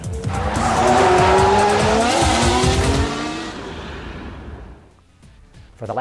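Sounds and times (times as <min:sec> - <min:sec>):
Formula One power unit engine revving at high revs through quick gear changes: 0:00.0 - 0:04.9.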